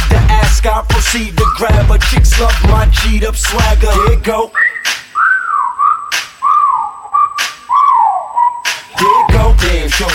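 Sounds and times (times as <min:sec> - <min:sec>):
speech: 0:00.6 - 0:05.0, 0:09.0 - 0:10.1
human wolf whistle with a sharp snapping crack: 0:01.4 - 0:01.8, 0:03.8 - 0:09.5.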